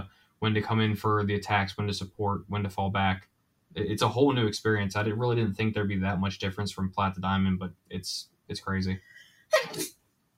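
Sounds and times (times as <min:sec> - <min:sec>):
speech: 0:00.4 - 0:10.0
sneeze: 0:09.5 - 0:10.0.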